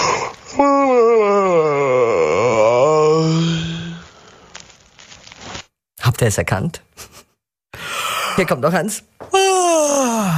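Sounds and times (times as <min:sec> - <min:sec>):
long drawn-out human yawn: 0:00.0 - 0:04.1, 0:09.3 - 0:10.3
speech: 0:06.2 - 0:07.1, 0:08.4 - 0:09.1.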